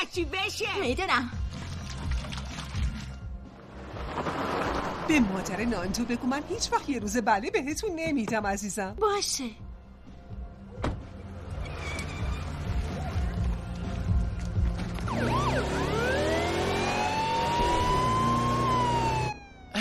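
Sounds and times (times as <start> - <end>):
road and engine noise: 0.0 - 19.7
speech: 0.1 - 1.4, 5.1 - 9.6
police car siren wailing, switched on to overtake traffic: 15.0 - 19.7.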